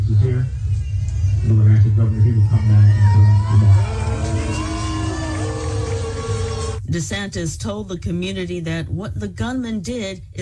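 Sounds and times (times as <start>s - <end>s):
speech: 0.1s - 0.7s, 1.4s - 4.7s, 6.9s - 10.4s
crowd booing at a vigil: 2.0s - 6.8s
scattered shouts: 2.4s - 6.8s.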